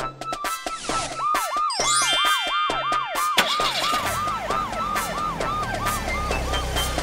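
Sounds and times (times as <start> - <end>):
police car siren wailing in rising-and-falling yelps: 0.4 - 7.0
cartoonish clatter and effects: 0.7 - 4.3.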